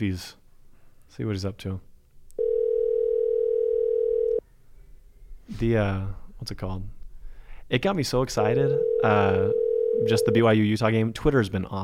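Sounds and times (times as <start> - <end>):
speech: 0.0 - 0.4, 1.1 - 1.9, 5.5 - 7.0, 7.7 - 11.8
telephone dial tone: 2.4 - 4.4, 8.8 - 10.3.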